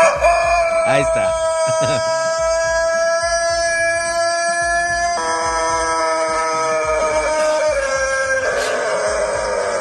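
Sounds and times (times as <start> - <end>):
rooster crowing: 0.0 - 9.8
speech: 0.9 - 2.4.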